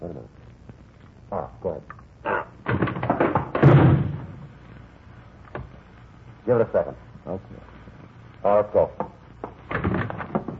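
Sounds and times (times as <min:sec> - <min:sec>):
speech: 0:00.0 - 0:00.4, 0:01.3 - 0:02.0, 0:06.5 - 0:07.6, 0:08.4 - 0:09.0
heavier thud of door giving way: 0:02.6 - 0:04.4, 0:09.7 - 0:10.5.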